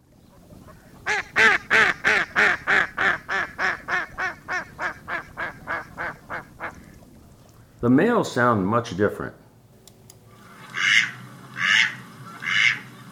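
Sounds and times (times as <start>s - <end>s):
female mallard duck quacking: 0.5s - 6.9s, 10.7s - 12.9s
speech: 7.8s - 9.4s.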